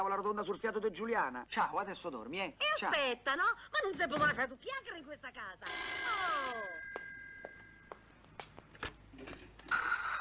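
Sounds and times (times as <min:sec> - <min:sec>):
speech: 0:00.0 - 0:06.8
telephone ringing: 0:05.6 - 0:08.1.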